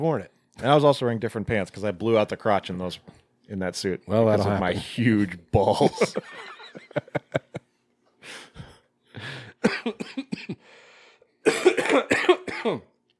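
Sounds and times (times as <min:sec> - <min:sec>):
speech: 0:00.0 - 0:07.2, 0:11.4 - 0:12.9
laughter: 0:04.3 - 0:07.7
harsh coughing: 0:08.5 - 0:10.7, 0:11.4 - 0:12.9.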